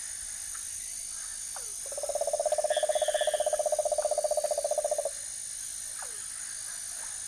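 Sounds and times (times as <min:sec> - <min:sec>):
soft insect background in the Ecuadorian Amazon: 0:00.0 - 0:07.2
cane toad giving a rapid low pulsed trill in the Ecuadorian Amazon: 0:01.9 - 0:05.1.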